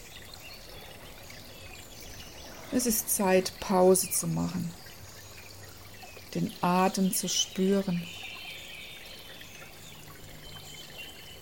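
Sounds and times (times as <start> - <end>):
water trickling in a brook: 0.0 - 11.4
speech: 2.7 - 4.8, 6.3 - 8.2.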